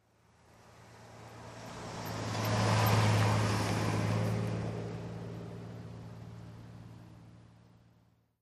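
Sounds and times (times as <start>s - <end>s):
car passing by at medium speed: 0.2s - 7.5s.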